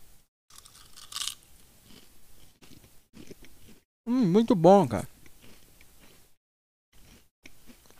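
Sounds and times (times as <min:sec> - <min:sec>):
crispy snack being bitten and chewed: 0:00.5 - 0:03.8, 0:05.1 - 0:06.3, 0:07.0 - 0:07.9
speech: 0:04.1 - 0:05.1.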